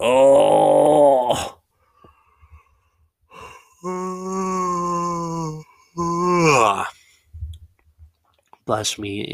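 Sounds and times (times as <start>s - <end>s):
loud drawn-out yawn: 0.0s - 1.6s, 3.3s - 7.0s
soft breathy noises: 1.6s - 6.0s, 6.8s - 7.8s
speech: 8.7s - 9.3s.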